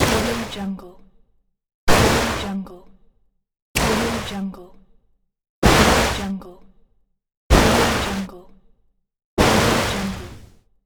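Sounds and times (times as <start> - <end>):
water wave impact: 0.0 - 0.6, 1.9 - 2.5, 5.6 - 6.3, 7.5 - 8.3, 9.4 - 10.5.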